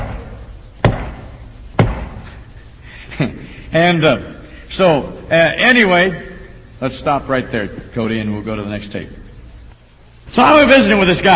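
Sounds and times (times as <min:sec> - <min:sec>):
man knocking on a house door: 0:01.8 - 0:02.2
speech: 0:03.2 - 0:09.2, 0:10.3 - 0:11.3.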